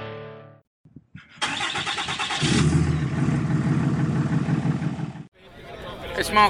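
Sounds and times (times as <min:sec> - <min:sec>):
bus engine droning while driving from Seinäjoki to Vaasa: 0:01.5 - 0:05.3
speech: 0:06.2 - 0:06.4.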